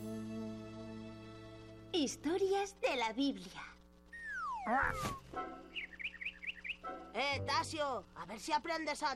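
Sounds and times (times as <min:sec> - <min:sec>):
speech: 0:01.9 - 0:03.8, 0:04.6 - 0:05.9, 0:07.1 - 0:09.1
parrot chirping: 0:04.1 - 0:07.1.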